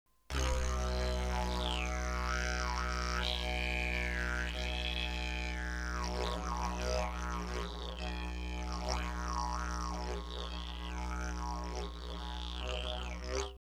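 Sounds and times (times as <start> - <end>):
didgeridoo: 0.3 - 13.6.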